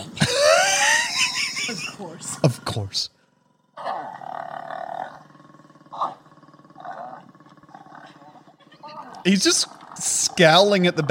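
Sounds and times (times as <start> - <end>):
laughter: 0.0 - 2.5, 8.0 - 9.1
lion low rumbling snarls: 0.0 - 11.0
lion roaring while mating: 2.3 - 11.0
speech: 2.4 - 3.2, 9.2 - 9.8, 10.4 - 11.0.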